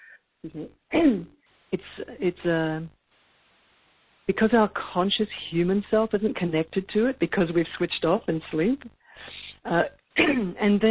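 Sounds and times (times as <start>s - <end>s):
speech: 0.4s - 3.0s, 4.3s - 10.8s
person clearing throat: 1.0s - 1.3s, 10.2s - 10.6s.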